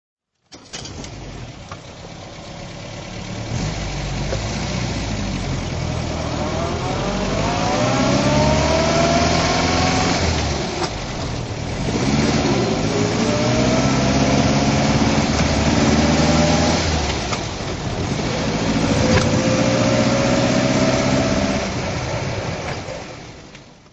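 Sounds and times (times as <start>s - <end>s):
MG car driving: 0.8s - 23.9s.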